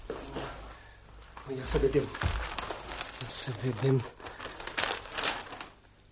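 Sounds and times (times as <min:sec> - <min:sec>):
newspaper being unfolded and shaken open in an office: 0:01.4 - 0:06.0
speech: 0:01.5 - 0:02.6, 0:03.3 - 0:04.3.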